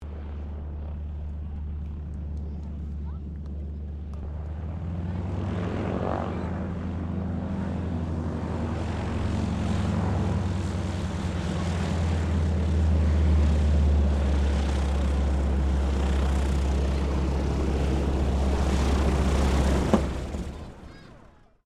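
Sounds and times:
Harvard Mk III training aircraft taxiing and shutting down: 0.0 - 21.5.

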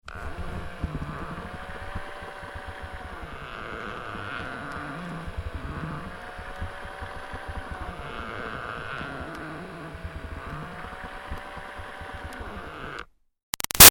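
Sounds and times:
motorized toy baby doll moving: 0.0 - 13.1
plastic creaks of toy baby doll: 0.0 - 13.9.

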